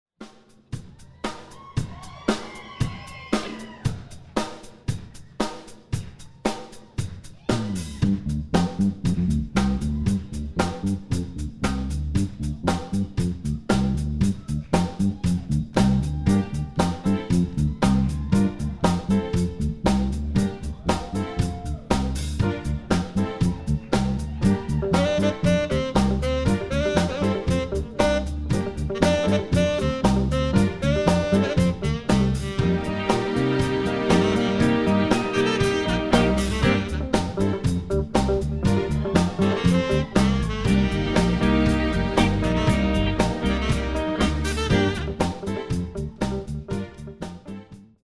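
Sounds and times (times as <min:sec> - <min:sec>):
live music mix: 0:00.2 - 0:48.0.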